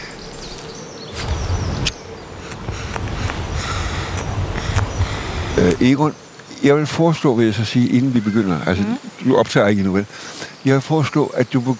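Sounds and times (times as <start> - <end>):
bees buzzing: 0.0 - 5.9
speech: 5.6 - 11.7.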